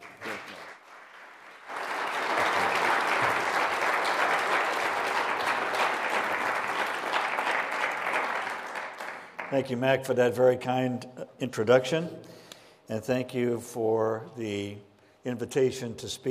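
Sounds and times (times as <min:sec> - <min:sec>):
applause from a sizable audience: 0:00.0 - 0:09.6
speech: 0:09.5 - 0:16.2.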